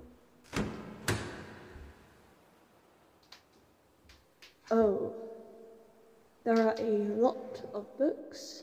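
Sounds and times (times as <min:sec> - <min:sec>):
heavy floor hatch door thudding open: 0:00.5 - 0:02.2
speech: 0:04.7 - 0:05.2, 0:06.4 - 0:08.6.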